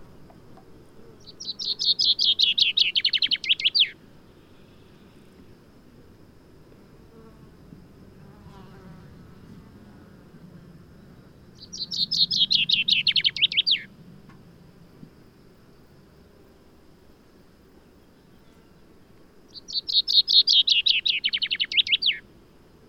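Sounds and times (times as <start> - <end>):
common chaffinch song, Fringilla coelebs: 0.0 - 5.4, 10.9 - 14.4, 17.7 - 22.8.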